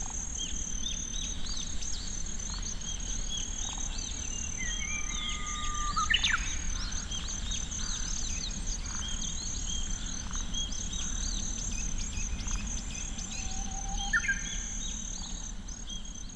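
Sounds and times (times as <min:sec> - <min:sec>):
Kinhibari cricket song in Tsuruoka City: 0:00.0 - 0:16.3.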